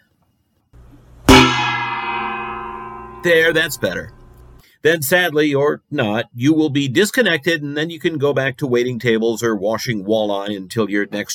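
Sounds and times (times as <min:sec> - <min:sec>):
gong strike: 0:01.3 - 0:04.6
speech: 0:03.2 - 0:04.2, 0:04.8 - 0:11.3.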